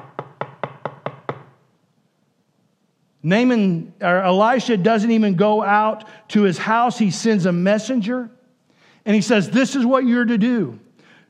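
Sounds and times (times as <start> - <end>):
knocking on a wooden door: 0.0 - 1.6
speech: 3.2 - 8.4, 9.0 - 10.8.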